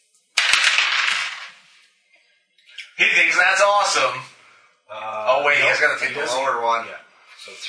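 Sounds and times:
two dice rolling on a hard tabletop: 0:00.4 - 0:01.9
speech: 0:03.0 - 0:04.3, 0:04.9 - 0:07.6.

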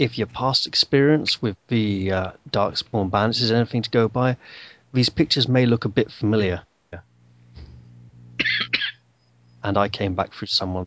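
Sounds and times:
speech: 0:00.0 - 0:07.0, 0:09.6 - 0:10.8
low steady hum: 0:00.0 - 0:10.8
harsh coughs: 0:08.4 - 0:09.0.

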